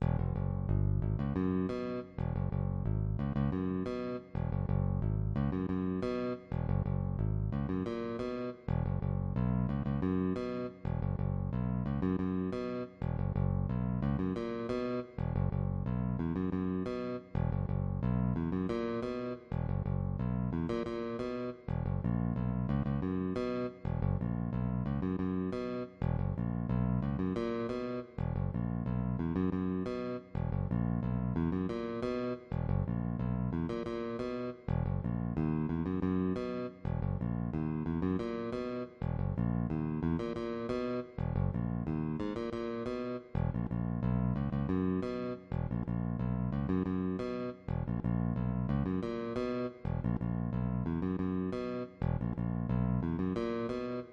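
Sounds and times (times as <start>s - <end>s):
bass guitar: 0.0s - 54.1s.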